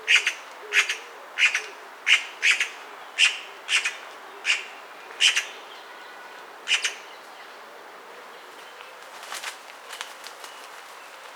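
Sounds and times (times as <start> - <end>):
Eurasian magpie Pica pica giving grating chack notes: 0.1 - 5.6, 6.7 - 7.0.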